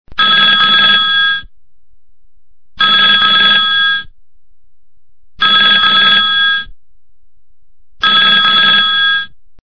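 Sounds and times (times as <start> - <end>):
old phone: 0.1 - 1.5, 2.8 - 4.1, 5.4 - 6.7, 8.0 - 9.4.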